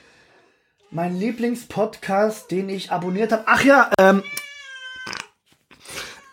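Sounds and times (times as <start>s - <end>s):
speech: 0.9s - 4.4s
male cat meowing loudly: 4.1s - 5.3s.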